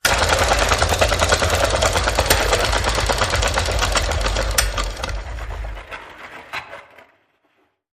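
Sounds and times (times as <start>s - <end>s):
film projector spinning reel: 0.0s - 6.6s.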